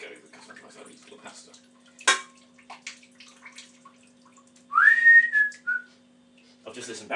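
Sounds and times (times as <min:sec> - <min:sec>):
loud piercing whistling: 0:04.7 - 0:05.9
speech: 0:06.8 - 0:07.1.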